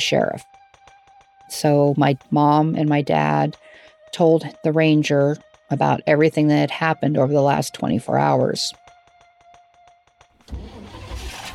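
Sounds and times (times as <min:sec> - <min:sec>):
speech: 0:00.0 - 0:00.6, 0:01.5 - 0:08.8
car engine cranking with starter whirs and starting to idle: 0:10.5 - 0:11.5.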